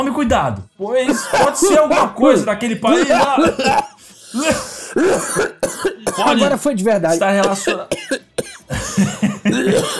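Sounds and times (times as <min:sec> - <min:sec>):
speech: 0:00.0 - 0:09.9
laughter: 0:02.6 - 0:05.2, 0:08.7 - 0:09.9
person clearing throat: 0:02.7 - 0:06.4, 0:07.2 - 0:09.9.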